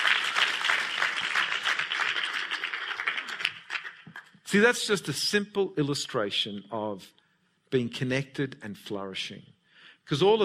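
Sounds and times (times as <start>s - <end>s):
audience applauding: 0.0s - 4.4s
speech: 4.5s - 10.4s.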